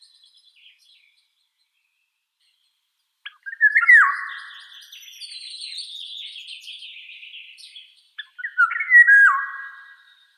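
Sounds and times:
Eurasian golden oriole Oriolus oriolus fluting whistled song: 0:03.3 - 0:10.3.

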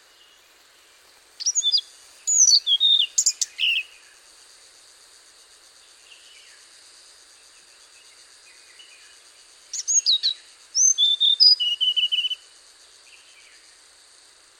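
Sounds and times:
Hainan blue flycatcher song: 0:01.4 - 0:04.1, 0:08.5 - 0:13.8.

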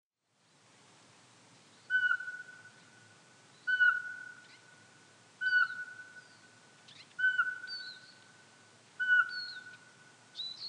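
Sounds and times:
faint high chirps from other birds: 0:01.7 - 0:04.8, 0:05.4 - 0:08.4, 0:09.0 - 0:10.6
Eurasian pygmy owl Glaucidium passerinum piping whistles: 0:01.9 - 0:02.7, 0:03.6 - 0:04.6, 0:05.4 - 0:08.2, 0:09.0 - 0:09.8.

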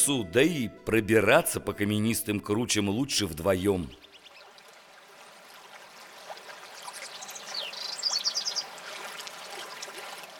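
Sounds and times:
speech: 0:00.0 - 0:04.0
birds singing softly in a mountain forest: 0:03.5 - 0:04.7, 0:06.7 - 0:08.8
brief rapid bird trill: 0:07.0 - 0:08.7.

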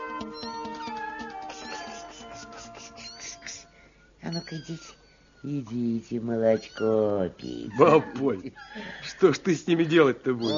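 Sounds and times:
several kittens meowing: 0:00.0 - 0:09.3, 0:09.9 - 0:10.5
laughter: 0:01.5 - 0:03.6, 0:07.7 - 0:10.1
speech: 0:04.3 - 0:10.5.

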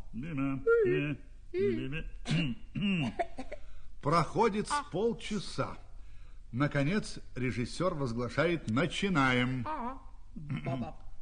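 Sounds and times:
speech: 0:00.1 - 0:05.8, 0:06.5 - 0:11.0
person clearing throat: 0:01.6 - 0:03.4, 0:10.4 - 0:10.8
soft coughs: 0:02.2 - 0:03.6.

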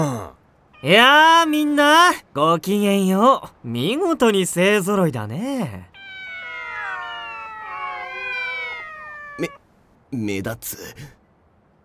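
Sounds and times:
speech: 0:00.0 - 0:05.9, 0:09.4 - 0:11.2
chorus of cats meowing: 0:00.8 - 0:01.3, 0:06.0 - 0:09.6.

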